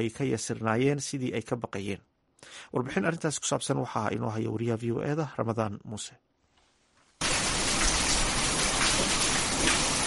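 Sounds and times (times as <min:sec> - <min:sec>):
speech: 0:00.0 - 0:06.3
heavy rain falling in the city of Djibouti: 0:07.2 - 0:10.0.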